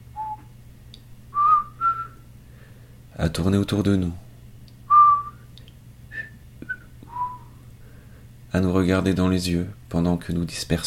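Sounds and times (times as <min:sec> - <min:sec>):
low steady hum: 0:00.0 - 0:10.8
clowns whistling off-key: 0:00.2 - 0:00.5, 0:01.4 - 0:02.2, 0:04.9 - 0:05.5, 0:06.1 - 0:07.6
speech: 0:03.2 - 0:04.2, 0:08.6 - 0:10.8.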